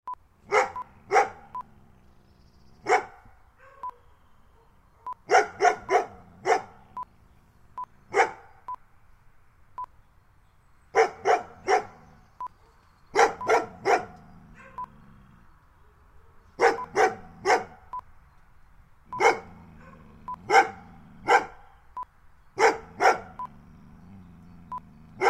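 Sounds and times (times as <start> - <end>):
large dogs barking outdoors: 0.4 - 2.1, 2.7 - 7.0, 8.1 - 8.6, 10.9 - 18.0, 19.1 - 21.9, 22.6 - 25.2.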